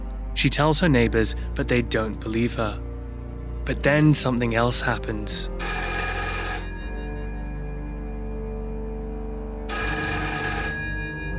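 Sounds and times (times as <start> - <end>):
speech: 0.4 - 2.9, 3.7 - 5.9
telephone ringing in bright trilling bursts: 5.6 - 11.3.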